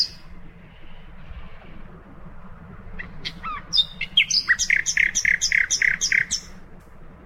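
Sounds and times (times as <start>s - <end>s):
common nightingale singing: 0.0s - 0.3s, 3.0s - 6.6s.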